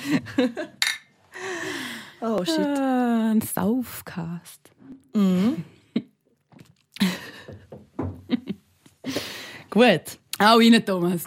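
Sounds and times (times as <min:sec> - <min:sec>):
speech: 0:00.0 - 0:00.8, 0:02.2 - 0:06.1, 0:09.1 - 0:11.2
glass beer bottles clinking in a toast: 0:00.8 - 0:01.1.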